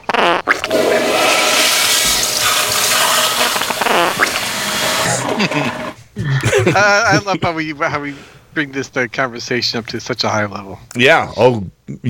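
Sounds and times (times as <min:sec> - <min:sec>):
water sputtering and gurgling: 0:00.0 - 0:06.0
toilet flushing: 0:00.4 - 0:06.0
laughter: 0:01.6 - 0:10.4
speech: 0:06.6 - 0:12.0.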